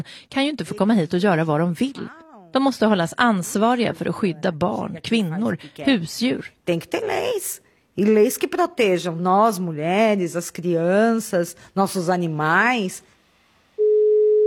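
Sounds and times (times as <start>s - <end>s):
speech: 0.0s - 13.1s
telephone ringing tone heard through the handset: 13.8s - 14.4s.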